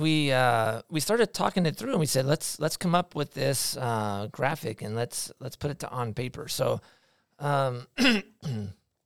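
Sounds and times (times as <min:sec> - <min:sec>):
speech: 0:00.0 - 0:08.8
person with allergies clearing throat: 0:08.0 - 0:08.8.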